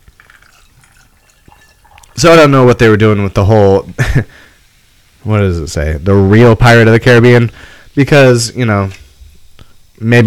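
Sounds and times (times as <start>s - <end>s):
spiced rum poured into a glass: 0.0s - 2.7s
speech: 2.2s - 4.4s, 5.2s - 9.0s, 10.0s - 10.2s.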